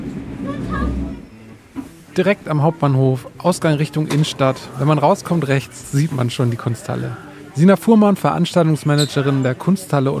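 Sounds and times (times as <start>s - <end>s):
train rumbling as it slows at a station: 0.0s - 2.0s
speech: 2.2s - 10.1s.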